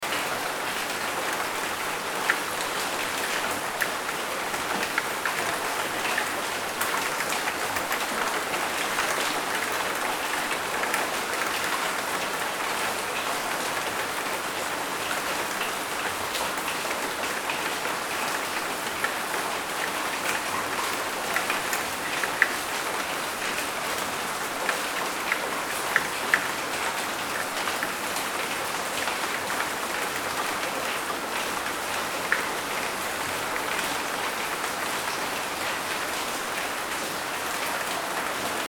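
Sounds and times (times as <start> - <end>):
rain: 0.0 - 38.6.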